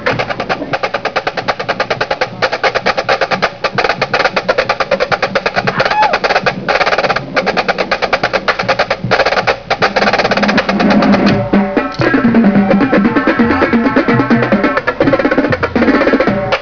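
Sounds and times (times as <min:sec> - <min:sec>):
snare drum solo played without plastic heads: 0:00.0 - 0:16.6.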